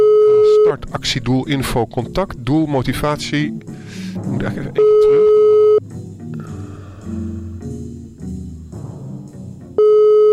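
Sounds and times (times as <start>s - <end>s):
telephone line tone from an unanswered call: 0.0s - 0.7s, 4.8s - 5.8s, 9.8s - 10.3s
music: 0.0s - 10.3s
speech: 0.9s - 5.4s.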